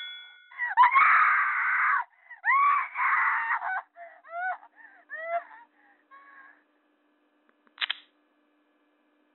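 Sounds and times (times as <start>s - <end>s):
loud harsh scream breaking into wavering shrieks: 0.7s - 5.5s
brief sharp click: 7.6s - 8.1s.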